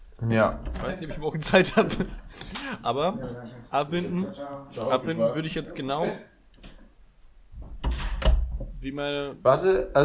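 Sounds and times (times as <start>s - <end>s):
speech: 0.2s - 6.3s, 8.8s - 10.0s
door opening and shutting: 7.6s - 8.8s.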